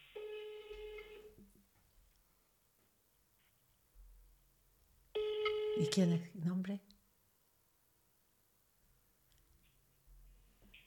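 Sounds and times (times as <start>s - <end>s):
ringback tone of an outgoing telephone call: 0.2s - 1.3s, 5.2s - 6.2s
speech: 5.8s - 6.9s.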